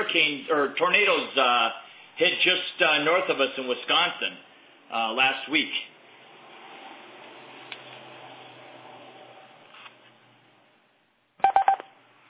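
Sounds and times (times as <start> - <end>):
speech: 0.1 - 5.9
sharp electronic beep tones on a conference call as a participant joins: 11.4 - 11.9.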